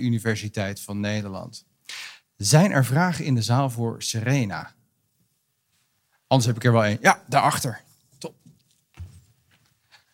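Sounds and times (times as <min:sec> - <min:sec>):
speech: 0:00.0 - 0:04.8, 0:06.3 - 0:08.4
person's footsteps walking to the back of a hall: 0:07.8 - 0:10.1.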